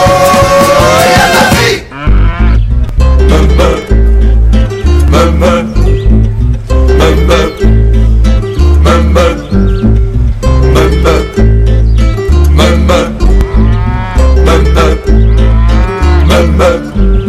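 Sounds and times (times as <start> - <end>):
several cows mooing: 0.3 - 3.8, 4.8 - 5.8, 12.4 - 17.1
bird chirping faintly: 2.1 - 17.2.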